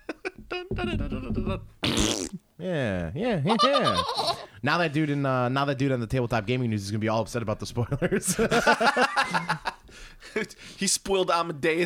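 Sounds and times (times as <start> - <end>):
laughter: 0.0 - 1.7, 3.5 - 4.5, 7.9 - 10.6
speech: 0.6 - 11.8
fart: 1.8 - 2.4.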